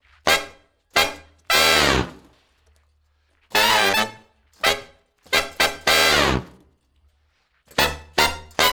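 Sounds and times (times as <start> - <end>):
horn section playing: 0.3 - 2.3, 3.5 - 6.6, 7.7 - 8.7.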